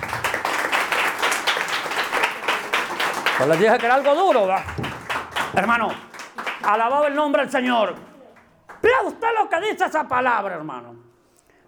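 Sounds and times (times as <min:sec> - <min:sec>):
congregation applauding: 0:00.0 - 0:07.2
speech: 0:03.4 - 0:04.9, 0:05.5 - 0:08.1, 0:08.8 - 0:11.1.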